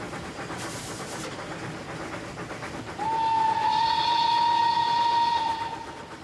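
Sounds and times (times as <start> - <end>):
narrow-gauge museum steam train rumbling along the track through a village: 0.0 - 6.2
long loud steam train whistle: 3.0 - 6.2.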